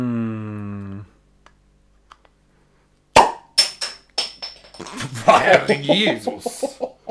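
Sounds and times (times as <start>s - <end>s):
speech: 0.0s - 0.2s, 5.4s - 6.9s
beer bottle cap levered off with a lighter in an apartment: 3.2s - 5.1s
bright metallic clatters of a bottle cap: 3.6s - 5.9s
laughter: 4.8s - 7.1s.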